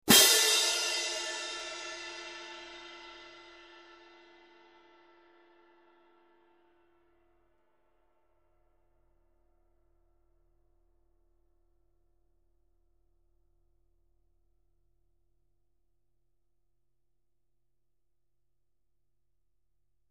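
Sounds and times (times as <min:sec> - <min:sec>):
18in stadium medium pair of cymbals: 0:00.1 - 0:06.0.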